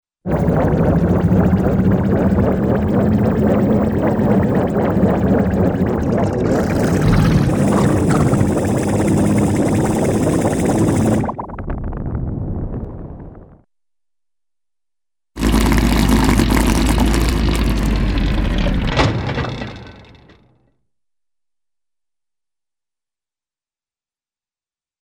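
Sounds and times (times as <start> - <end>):
steady machine with wet spinning sound: 0.3 - 11.7, 15.4 - 20.5.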